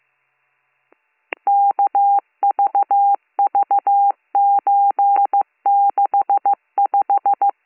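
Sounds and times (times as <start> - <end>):
touch-tone dialing beeps over a phone line: 1.5 - 7.5.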